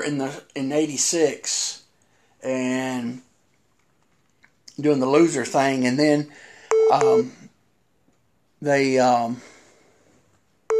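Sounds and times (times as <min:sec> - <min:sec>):
speech: 0:00.0 - 0:01.8, 0:02.4 - 0:03.3, 0:04.8 - 0:07.4, 0:08.6 - 0:09.5
phone beeping as a call comes in: 0:06.7 - 0:07.5.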